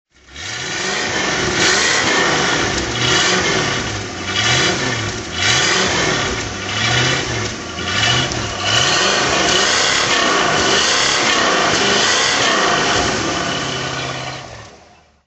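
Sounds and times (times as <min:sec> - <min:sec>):
Ford Thunderbird engine throttle: 0:00.1 - 0:15.2.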